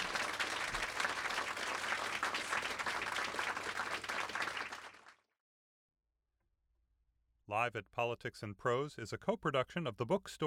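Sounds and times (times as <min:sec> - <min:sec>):
room full of people applauding: 0:00.0 - 0:05.2
speech: 0:07.5 - 0:10.4.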